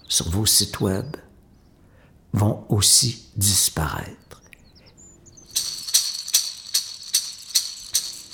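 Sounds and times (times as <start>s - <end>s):
speech: 0.1s - 1.2s, 2.3s - 4.4s
seed-filled rattle being shaken: 5.5s - 8.3s.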